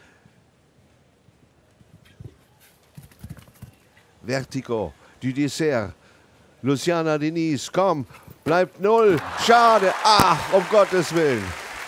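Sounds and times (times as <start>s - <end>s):
horse hooves thudding at a gallop: 1.8s - 4.0s
speech: 4.2s - 6.0s, 6.6s - 11.6s.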